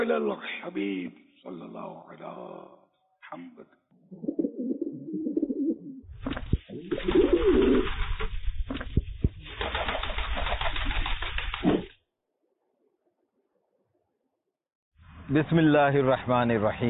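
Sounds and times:
speech: 0:00.1 - 0:04.4, 0:07.0 - 0:08.0, 0:15.3 - 0:16.8
pigeon cooing in low throaty rolling burbles: 0:04.0 - 0:06.0, 0:06.7 - 0:07.8
loud busy rustling and flapping: 0:06.1 - 0:12.0.

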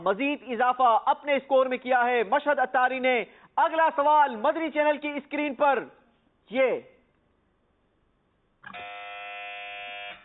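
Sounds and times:
speech: 0:00.0 - 0:06.9, 0:08.6 - 0:08.9
quiz show buzzer pressed on a religious quiz: 0:08.6 - 0:10.2.

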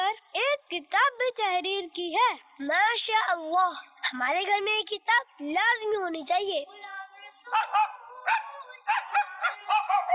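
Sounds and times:
speech: 0:01.4 - 0:06.9
dog barking in sharp high-pitched yaps: 0:07.6 - 0:10.1.

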